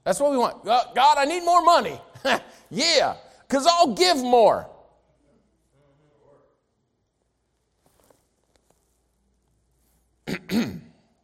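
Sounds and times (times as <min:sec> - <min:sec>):
speech: 0:00.0 - 0:04.7, 0:10.5 - 0:10.8
preacher clearing his throat during a sermon: 0:10.2 - 0:11.1.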